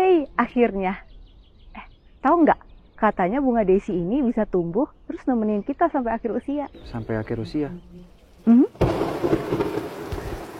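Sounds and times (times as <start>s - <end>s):
speech: 0.4s - 1.1s, 2.2s - 9.6s
steady rain: 6.9s - 10.5s
thunder cracking and rumbling: 8.7s - 10.5s.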